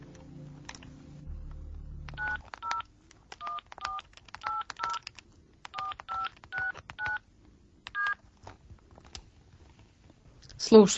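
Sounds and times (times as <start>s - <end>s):
mobile phone keypad dual-tone presses dialing a number: 2.1s - 5.1s, 5.7s - 7.2s, 7.9s - 8.2s
speech: 10.7s - 10.9s.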